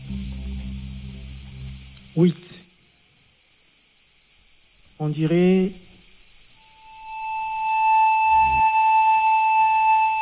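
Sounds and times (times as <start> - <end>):
constant airy hiss: 0.0 - 10.2
speech: 2.2 - 2.7, 5.0 - 5.9
thin high-pitched whistle in a snorkel: 6.6 - 10.2.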